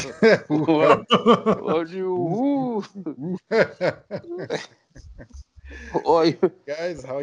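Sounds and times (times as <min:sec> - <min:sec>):
person imitating a barking dog with woofs and yelps: 0:00.0 - 0:04.6
person chuckling: 0:00.0 - 0:07.2
speech: 0:00.0 - 0:07.2.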